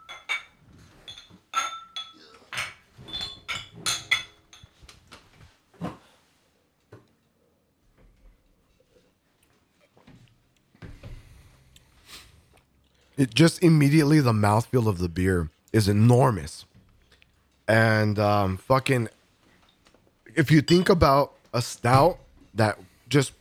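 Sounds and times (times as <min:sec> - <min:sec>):
glasses of bourbon barrel-aged stout clinking in a toast at a beer tasting: 0:00.0 - 0:04.8, 0:20.5 - 0:21.2, 0:21.9 - 0:23.4
speech: 0:13.2 - 0:16.7, 0:17.7 - 0:19.2, 0:20.4 - 0:23.4.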